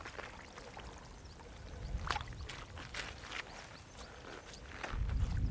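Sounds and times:
wet boots squelching: 0.0s - 5.4s.

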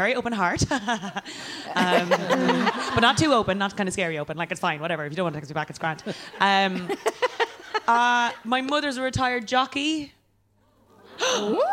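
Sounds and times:
speech: 0.0s - 10.2s, 11.2s - 11.7s
laughter: 0.7s - 3.3s, 5.8s - 8.0s
audience gasp: 11.0s - 11.7s.

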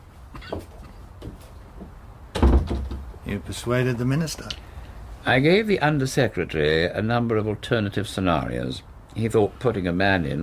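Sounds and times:
door shutting with a heavy thud: 2.3s - 3.1s
speech: 3.3s - 4.6s, 5.2s - 10.4s.

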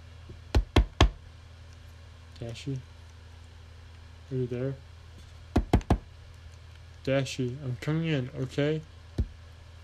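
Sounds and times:
firm knocking on a door: 0.5s - 1.2s, 5.5s - 6.0s
speech: 2.4s - 2.9s, 4.3s - 4.9s, 7.1s - 8.9s.

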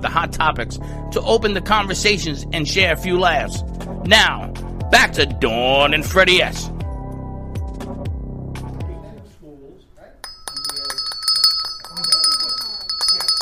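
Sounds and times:
speech: 0.0s - 6.7s
dinner bell ringing: 10.2s - 13.3s.

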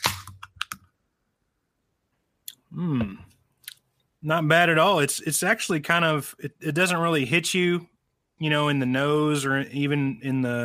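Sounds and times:
can of lemon IPA beer being cracked open: 0.0s - 0.6s
speech: 2.7s - 3.3s, 4.2s - 10.6s.

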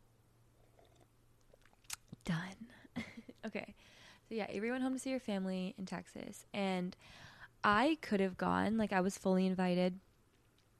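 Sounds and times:
low steady hum: 0.0s - 10.7s
sipping coffee: 0.6s - 2.2s
slurping and swallowing mouth sounds: 0.6s - 2.2s
speech: 2.3s - 10.1s.

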